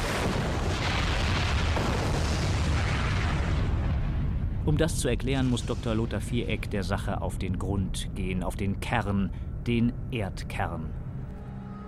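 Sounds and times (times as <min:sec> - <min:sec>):
volcanic eruption roar between Sumatra and Java: 0:00.0 - 0:06.8
speech: 0:04.7 - 0:11.0.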